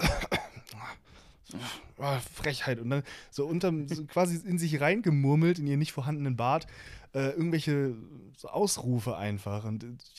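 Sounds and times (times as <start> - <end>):
person imitating a woman coughing: 0.0 - 0.7
speech: 1.5 - 10.1.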